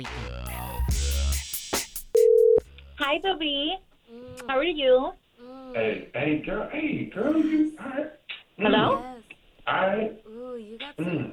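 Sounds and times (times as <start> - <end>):
electronic telephone ringing tone through a handset line: 2.2 - 2.6
speech: 3.1 - 11.3.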